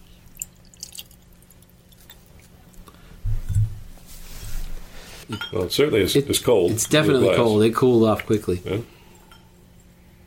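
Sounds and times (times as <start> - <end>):
liquid poured over ice in a glass: 0.3 - 2.5
speech: 5.3 - 9.0.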